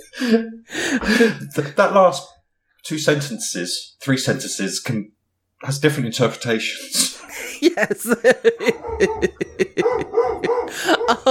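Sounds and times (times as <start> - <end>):
speech: 0.0 - 11.3
laughter: 6.8 - 11.3
dog barking: 8.7 - 11.3.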